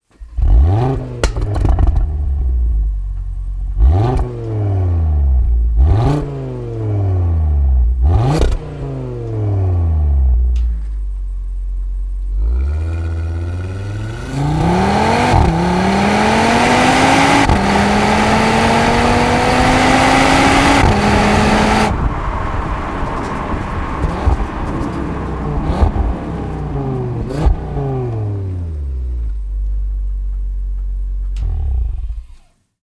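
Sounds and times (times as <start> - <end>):
stock exhaust of 2023 Audi RS 3 Sportback 8Y: 0.0 - 32.5.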